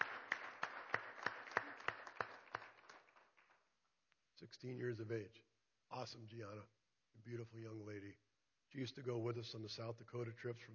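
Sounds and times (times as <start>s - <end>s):
audience applauding: 0.0s - 3.6s
speech: 4.4s - 10.7s.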